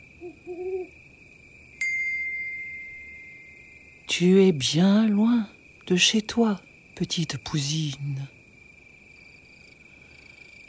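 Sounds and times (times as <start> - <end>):
owl hooting at dusk: 0.0 - 1.0
speech: 0.2 - 1.0, 4.1 - 8.4
bright chime ringing: 1.8 - 3.9
steady high tone: 1.8 - 4.3.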